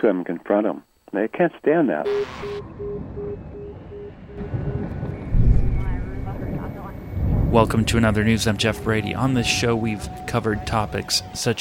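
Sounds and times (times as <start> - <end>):
speech: 0.0 - 3.5, 7.5 - 11.5
helicopter hovering overhead: 2.1 - 11.5
indistinct voices murmuring: 3.7 - 11.5.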